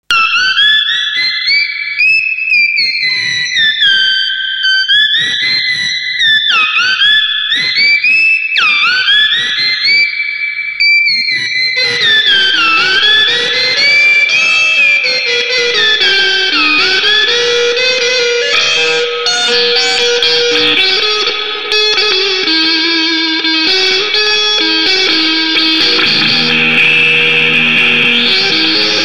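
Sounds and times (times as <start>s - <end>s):
KORG guitar synthesizer: 0.0s - 29.0s.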